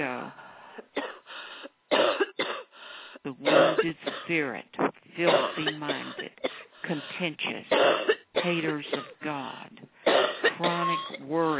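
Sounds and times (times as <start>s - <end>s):
people coughing during a deliverance prayer session: 0.9s - 1.2s, 1.9s - 2.7s, 3.4s - 4.3s, 5.3s - 6.7s, 7.7s - 9.2s, 10.0s - 11.2s
speech: 3.8s - 9.7s, 10.6s - 11.5s.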